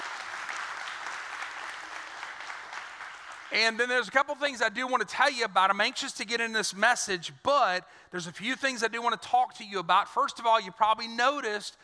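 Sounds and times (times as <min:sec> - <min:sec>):
audience clapping: 0:00.0 - 0:04.1
speech: 0:03.5 - 0:11.8.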